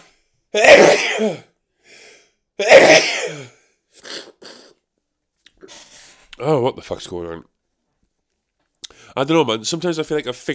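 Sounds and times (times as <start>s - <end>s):
speech: 0.5s - 1.5s, 2.6s - 3.6s, 6.4s - 7.5s, 9.2s - 10.5s
person sneezing: 0.6s - 4.8s.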